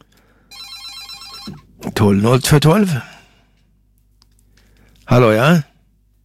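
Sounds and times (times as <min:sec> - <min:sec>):
telephone ringing on a community radio station's open phone-in line: 0:00.5 - 0:01.7
speech: 0:01.5 - 0:03.1, 0:05.1 - 0:05.7.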